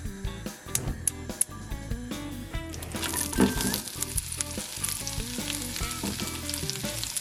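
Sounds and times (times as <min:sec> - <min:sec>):
soft music: 0:00.0 - 0:07.1
onions frying in butter in a pan: 0:02.8 - 0:07.1.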